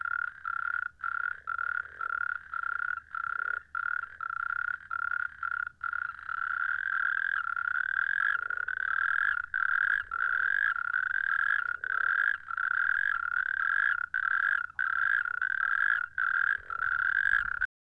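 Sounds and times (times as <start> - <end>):
Bufo frogs: 0.0 - 17.7.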